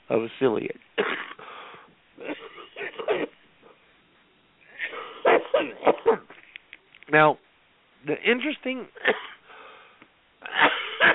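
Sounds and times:
speech: 0.1s - 1.3s, 7.1s - 7.4s, 8.1s - 9.3s
person coughing harshly: 1.0s - 1.5s, 2.2s - 3.4s, 4.8s - 6.3s, 9.0s - 9.4s, 10.4s - 11.1s.

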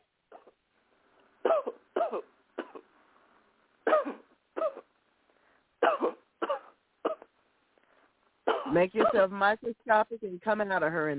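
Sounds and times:
woman coughing in short harsh bursts: 1.4s - 2.9s, 3.8s - 4.9s, 5.8s - 7.3s, 8.5s - 9.3s
speech: 1.6s - 2.3s, 8.8s - 11.1s.

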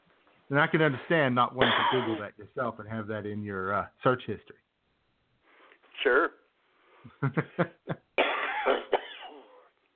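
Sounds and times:
speech: 0.5s - 4.6s, 6.0s - 6.4s, 7.0s - 8.0s
coughing: 1.6s - 2.3s, 8.2s - 9.8s
laughter: 7.1s - 8.1s.

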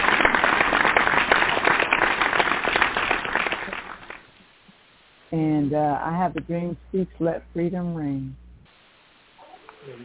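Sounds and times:
applause from a group of people: 0.0s - 4.3s
speech: 5.4s - 8.4s.

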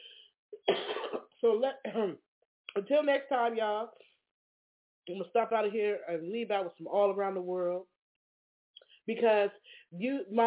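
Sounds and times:
throat clearing: 0.6s - 1.3s
person having a coughing attack: 0.6s - 2.2s
speech: 1.4s - 4.1s, 5.0s - 7.9s, 9.1s - 10.4s.

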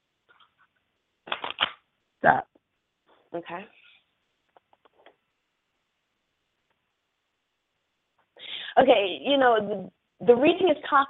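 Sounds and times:
deck of tarot cards being shuffled: 0.3s - 1.9s
loud crackling riffle of tarot cards: 1.2s - 1.8s
speech: 2.2s - 2.5s, 3.3s - 3.8s, 8.8s - 11.0s.

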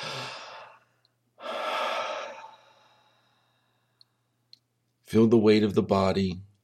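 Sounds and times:
slow deep breaths during a guided meditation: 0.0s - 4.4s
speech: 5.1s - 6.5s.

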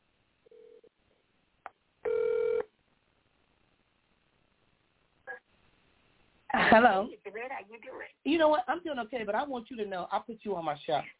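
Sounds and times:
short low phone line tone: 2.0s - 2.7s
loud buzzing phone ring tone: 2.1s - 2.7s
speech: 6.8s - 11.1s.

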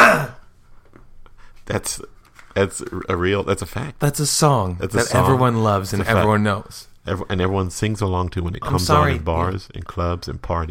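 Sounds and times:
person clearing throat: 0.0s - 0.5s
speech: 1.7s - 10.7s.

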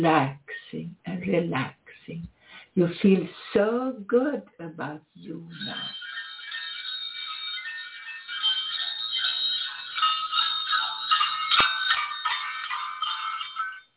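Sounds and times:
speech: 0.0s - 6.0s
continuous shimmering bells ringing together: 5.2s - 13.9s.

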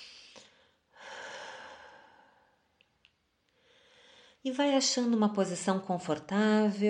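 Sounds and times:
slow deep breath in and out during a guided breathing exercise: 0.0s - 2.7s, 3.6s - 4.4s
speech: 4.4s - 6.8s.

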